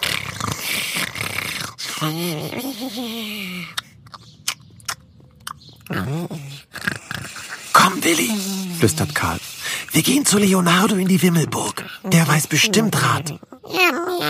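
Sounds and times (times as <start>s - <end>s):
voice imitating a small creature's breathy snores: 0.0s - 3.8s, 5.9s - 14.2s
speech: 2.0s - 3.8s, 5.9s - 6.8s, 7.9s - 14.2s
voice imitating a small creature's wet smacking clicks: 3.7s - 6.0s.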